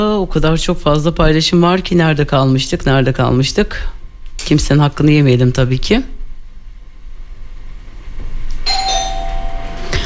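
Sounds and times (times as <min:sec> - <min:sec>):
speech: 0:00.0 - 0:06.2
electronic doorbell chime: 0:08.6 - 0:10.0.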